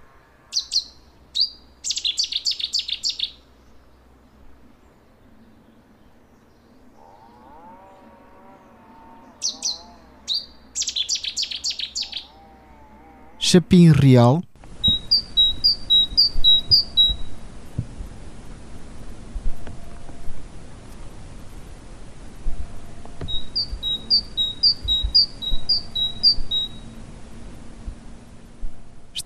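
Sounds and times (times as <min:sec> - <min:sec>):
Cetti's warbler explosive song: 0:00.0 - 0:12.6, 0:13.2 - 0:17.8, 0:22.6 - 0:27.4
faint birds: 0:00.0 - 0:17.9, 0:18.6 - 0:29.2
low mooing cow: 0:07.0 - 0:10.3, 0:12.3 - 0:13.5
speech: 0:13.5 - 0:14.5.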